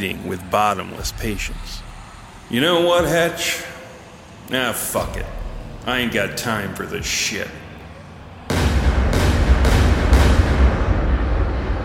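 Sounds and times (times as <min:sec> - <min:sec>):
speech: 0:00.0 - 0:01.9, 0:02.5 - 0:03.8, 0:04.5 - 0:07.6
booming gunshots: 0:08.5 - 0:11.8.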